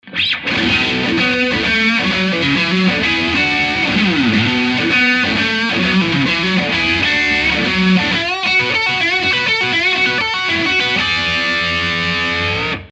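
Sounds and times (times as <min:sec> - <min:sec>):
Strat electric guitar on bridge and middle pickups: 0:00.0 - 0:12.9.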